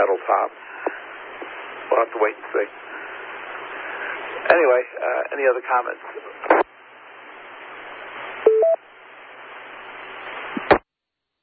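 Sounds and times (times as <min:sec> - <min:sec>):
speech: 0:00.0 - 0:01.1, 0:01.9 - 0:02.9, 0:04.5 - 0:06.7
line noise hiss: 0:00.0 - 0:10.8
telephone keypad beep: 0:08.5 - 0:08.8.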